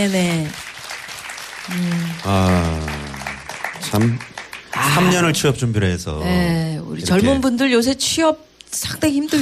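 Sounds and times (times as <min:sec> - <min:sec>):
speech: 0:00.0 - 0:00.6, 0:01.7 - 0:03.0, 0:03.8 - 0:09.4
audience applause: 0:00.0 - 0:05.6.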